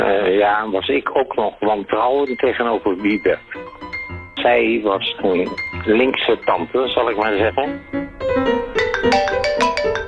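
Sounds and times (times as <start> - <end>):
speech: 0.0 - 3.6, 4.4 - 9.2
telephone ringing with a bright melodic ringtone: 8.8 - 10.0.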